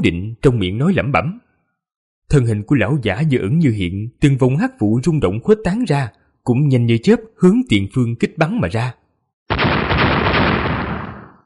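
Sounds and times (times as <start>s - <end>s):
speech: 0.0s - 1.5s, 2.3s - 9.6s
series of explosions: 9.5s - 11.4s.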